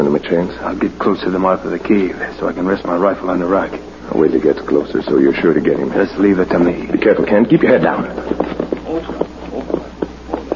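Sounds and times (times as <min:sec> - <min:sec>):
speech: 0:00.0 - 0:09.3
horse hooves clip-clopping as a drama sound effect: 0:08.2 - 0:10.5.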